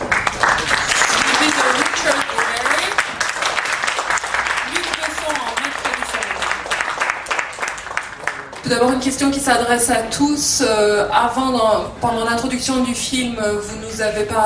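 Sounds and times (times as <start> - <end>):
crowd applauding at a press conference for a documentary film: 0.0 - 9.0
speech: 8.8 - 14.4.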